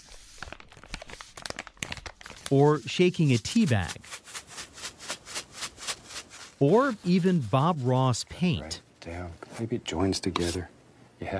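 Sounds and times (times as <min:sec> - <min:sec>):
paper being crumpled and squeezed: 0:00.0 - 0:08.7
speech: 0:02.5 - 0:04.0, 0:06.6 - 0:11.3.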